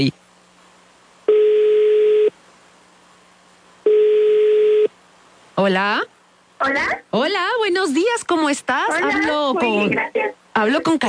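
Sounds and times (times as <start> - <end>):
speech: 0.0 - 0.2, 5.6 - 11.0
faint telephone line hiss: 0.0 - 11.0
telephone ringback tones of an outgoing call to a radio contest hotline: 1.3 - 2.3, 3.8 - 4.9.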